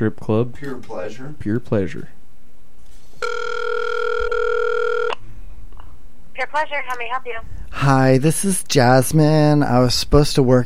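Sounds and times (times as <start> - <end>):
speech: 0.0 - 2.2, 6.4 - 10.6
faint noise: 0.0 - 10.6
electronic ringback tone of an outgoing telephone call: 3.2 - 5.2.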